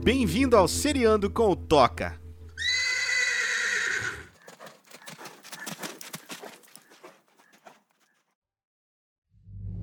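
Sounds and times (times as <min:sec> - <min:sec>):
speech: 0:00.2 - 0:02.2
horse whinnying loudly and shrilly: 0:02.6 - 0:07.7
horse hooves clip-clopping: 0:03.9 - 0:08.3.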